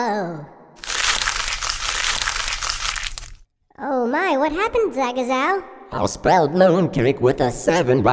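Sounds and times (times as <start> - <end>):
speech: 0.0 - 0.6, 4.3 - 8.1
paper letter being crumpled up: 0.8 - 3.4.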